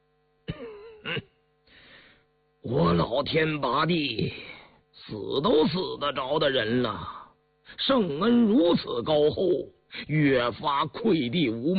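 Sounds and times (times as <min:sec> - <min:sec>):
weary old man giving a dry cough and clearing his throat: 0:00.4 - 0:01.4
speech: 0:02.6 - 0:11.7.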